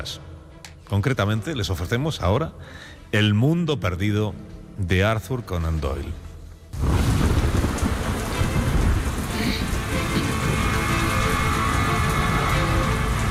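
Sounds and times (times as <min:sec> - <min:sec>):
speech: 0:00.0 - 0:00.3, 0:00.9 - 0:06.2
heavy rain pouring: 0:06.8 - 0:13.3.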